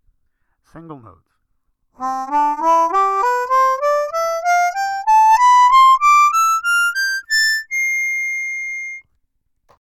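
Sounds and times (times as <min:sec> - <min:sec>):
single musical notes: 0:02.0 - 0:09.0.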